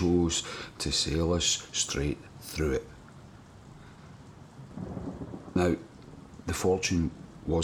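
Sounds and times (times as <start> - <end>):
speech: 0.0 - 3.0, 5.6 - 5.9, 6.5 - 7.6
steady rain: 0.0 - 7.6
low thunder rumble: 4.3 - 7.6.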